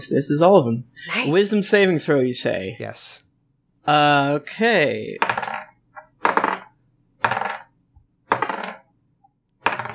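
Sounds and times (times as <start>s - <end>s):
speech: 0.0s - 3.2s, 3.9s - 5.4s
dice clattering and bouncing across a hard surface: 5.2s - 7.7s, 8.3s - 8.9s, 9.6s - 9.9s.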